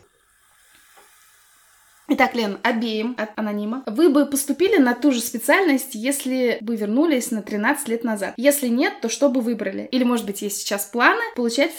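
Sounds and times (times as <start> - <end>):
champagne being poured into a glass: 0.0 - 2.4
speech: 2.1 - 11.7.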